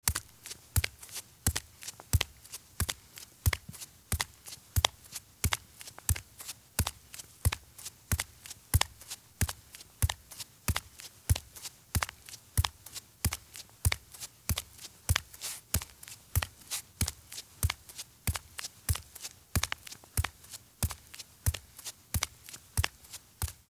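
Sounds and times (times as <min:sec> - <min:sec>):
bare feet walking at fast pace on concrete: 0:00.0 - 0:23.7.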